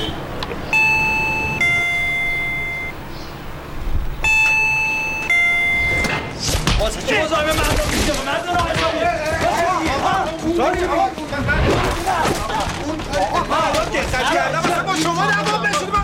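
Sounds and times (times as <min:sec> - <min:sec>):
two-tone doorbell chime: 0:00.8 - 0:02.9, 0:04.2 - 0:06.2
people talking: 0:06.8 - 0:16.0.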